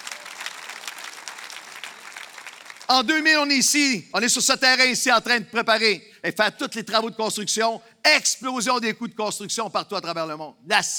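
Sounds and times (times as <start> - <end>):
audience applause in a church: 0.0 - 3.0
speech: 2.9 - 10.9.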